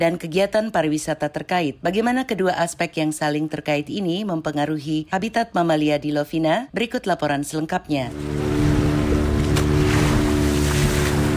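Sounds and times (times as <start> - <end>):
speech: 0.0 - 8.6
motorboat engine droning on the sea: 8.1 - 11.3
sea water splashing: 8.1 - 11.3.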